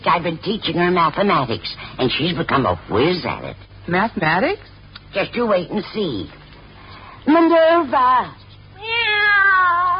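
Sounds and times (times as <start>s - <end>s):
speech: 0.0s - 6.4s, 7.2s - 9.0s
cat meowing: 8.8s - 9.9s.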